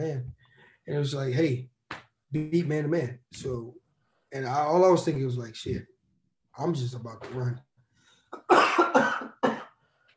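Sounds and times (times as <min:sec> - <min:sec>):
speech: 0:00.0 - 0:01.7, 0:02.3 - 0:05.9, 0:06.6 - 0:07.7
harsh rasping coughing fit: 0:08.4 - 0:09.7.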